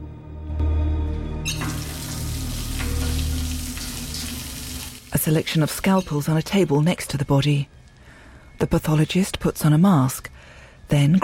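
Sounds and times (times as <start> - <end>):
tap water running into a basin as a pathologist washes his hands: 1.5 - 5.5
speech: 5.2 - 7.8, 8.6 - 11.2.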